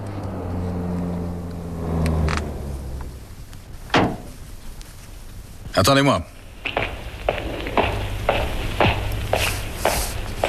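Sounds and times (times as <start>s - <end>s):
taxi engine humming as it slows and pulls up: 0.0s - 5.0s, 6.5s - 10.4s
sharp mechanical clunk: 3.9s - 4.3s
speech: 5.8s - 6.4s.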